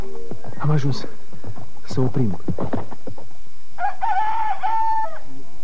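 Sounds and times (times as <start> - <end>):
speech: 0.8 - 1.2, 1.9 - 2.8
rooster crowing: 3.8 - 5.4.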